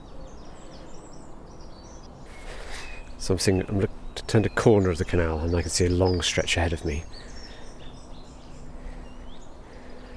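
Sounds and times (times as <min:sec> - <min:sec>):
song thrush singing: 0:00.0 - 0:10.1
speech: 0:03.2 - 0:07.3.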